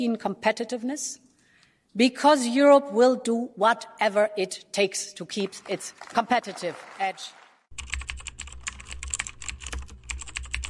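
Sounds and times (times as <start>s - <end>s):
speech: 0.0s - 1.3s, 2.0s - 7.9s
typing on a laptop keyboard: 7.7s - 10.6s.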